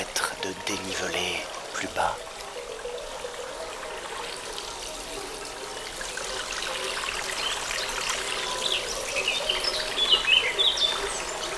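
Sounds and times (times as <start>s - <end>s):
spring water trickling over stones: 0.0s - 11.5s
speech: 0.5s - 2.3s.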